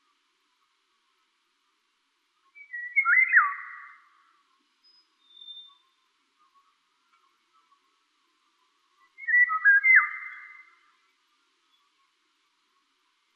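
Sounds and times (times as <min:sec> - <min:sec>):
Eurasian golden oriole Oriolus oriolus singing fluty whistles: 0:02.6 - 0:04.0, 0:04.9 - 0:05.8, 0:09.2 - 0:10.7.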